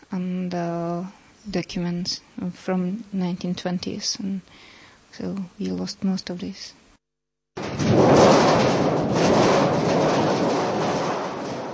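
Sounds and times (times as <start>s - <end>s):
speech: 0.1s - 6.8s
large metal sheet shaken as a stage storm effect: 7.6s - 11.7s.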